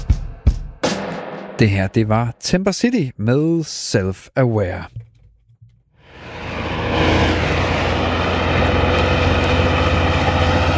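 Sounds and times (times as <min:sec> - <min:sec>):
speech: 0:01.6 - 0:05.1
engine of heavy truck loaded with gravel driving: 0:06.0 - 0:10.7.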